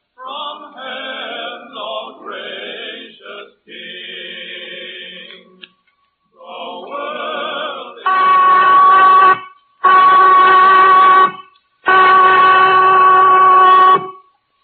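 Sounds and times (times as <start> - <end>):
prison whistle blasts signaling lights out: 8.0 - 14.4.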